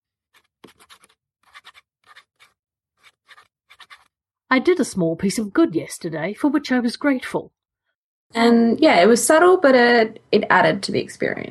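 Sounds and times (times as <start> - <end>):
pen scratching on paper: 0.3 - 4.1
speech: 4.5 - 7.6, 8.3 - 11.4.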